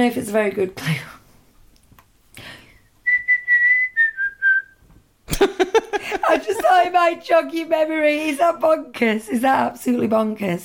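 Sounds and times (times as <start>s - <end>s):
speech: 0.0s - 1.2s, 6.3s - 10.6s
person whistling a tune: 3.1s - 4.8s.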